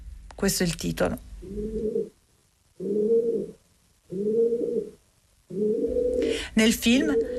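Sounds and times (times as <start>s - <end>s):
faint low hum: 0.0s - 7.3s
speech: 0.4s - 1.9s, 6.6s - 7.3s
pigeons cooing in a Paris square: 1.4s - 2.2s, 2.8s - 6.4s, 7.0s - 7.3s.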